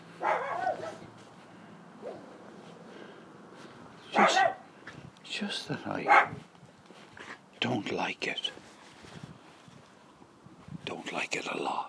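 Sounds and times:
steady outdoor hiss: 0:00.0 - 0:11.8
dog barking: 0:00.2 - 0:01.1, 0:02.0 - 0:02.3, 0:04.1 - 0:04.7, 0:06.0 - 0:06.4
speech: 0:05.4 - 0:06.5, 0:07.6 - 0:08.6, 0:11.1 - 0:11.8.

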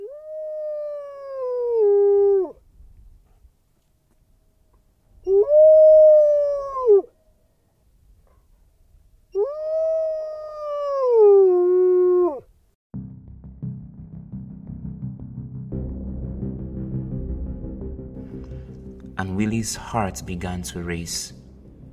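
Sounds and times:
long loud howls outside on a dark windy night: 0:00.0 - 0:02.7, 0:05.2 - 0:07.2, 0:09.3 - 0:12.5
low rushing noise: 0:13.2 - 0:21.9
speech: 0:19.6 - 0:21.4.

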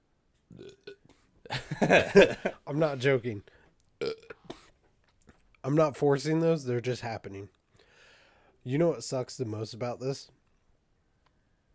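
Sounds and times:
beer burps: 0:00.5 - 0:01.2, 0:04.0 - 0:04.6
speech: 0:01.5 - 0:04.1, 0:05.7 - 0:07.6, 0:08.6 - 0:10.4.

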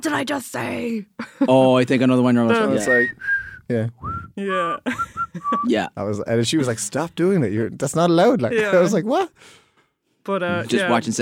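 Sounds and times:
speech: 0:00.0 - 0:09.6, 0:10.2 - 0:11.2
voices talking and laughing: 0:00.6 - 0:07.6, 0:08.2 - 0:09.4
person whistling a tune: 0:02.8 - 0:05.7.

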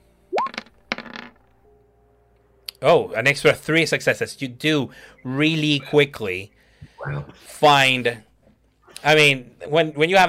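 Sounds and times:
dice rattling during a tabletop game reroll: 0:00.4 - 0:01.4
speech: 0:02.8 - 0:08.3, 0:09.0 - 0:10.2.

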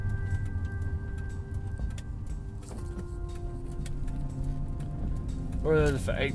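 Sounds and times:
car engine humming and revving during rev-match downshift inside the cabin: 0:00.0 - 0:06.3.

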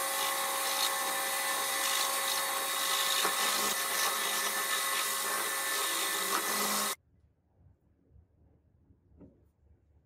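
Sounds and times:
high-pitched power tool grinding or polishing metal: 0:00.0 - 0:07.0.

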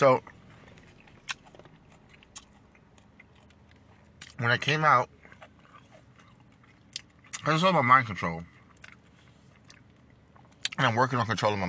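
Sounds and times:
speech: 0:00.0 - 0:00.3, 0:04.4 - 0:05.2, 0:07.4 - 0:08.5, 0:10.8 - 0:11.6
faint chewing of juicy food: 0:00.0 - 0:11.6
sharp crunchy bites: 0:00.6 - 0:07.5.

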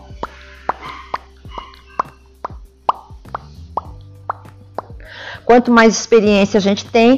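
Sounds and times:
lip pops from air bursting through pressed lips: 0:00.1 - 0:05.0
speech: 0:05.5 - 0:07.1.

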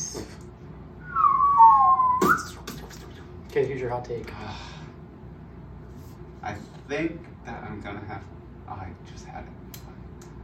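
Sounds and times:
speech: 0:00.1 - 0:00.4, 0:03.6 - 0:04.7, 0:06.4 - 0:09.6
person attempting to whistle: 0:01.0 - 0:02.6.

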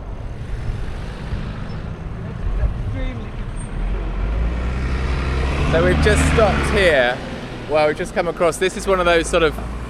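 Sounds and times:
motor traffic rumbling through a shared space: 0:00.0 - 0:09.8
speech: 0:05.7 - 0:09.8.

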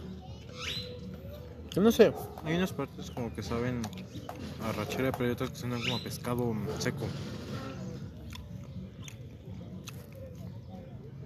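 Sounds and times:
speech: 0:01.8 - 0:07.6
wet chewing and biting of a burger: 0:07.5 - 0:11.2.

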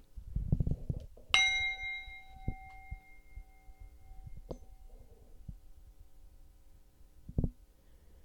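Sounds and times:
meditation bell ringing: 0:01.4 - 0:05.4.

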